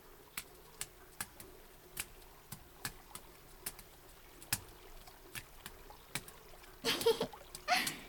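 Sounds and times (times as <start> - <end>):
water dripping at an outdoor hot-spring bath: 0.0 - 8.0.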